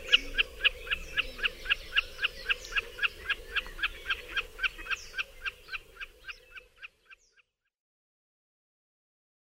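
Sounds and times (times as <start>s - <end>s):
common snipe clipped ticking calls: 0.0s - 7.5s.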